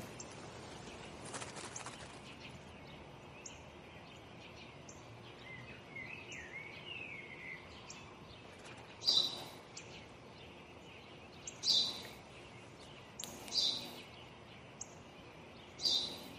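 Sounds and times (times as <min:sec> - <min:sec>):
low outdoor ambient hum: 0:00.0 - 0:16.3
sparrow chirping in short sharp bursts: 0:00.0 - 0:16.3.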